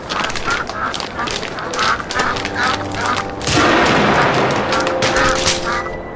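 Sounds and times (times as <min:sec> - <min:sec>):
chorus of quacking ducks: 0:00.0 - 0:06.1
honking calls: 0:00.0 - 0:06.1
shotgun blasts fired at ducks: 0:03.4 - 0:05.8.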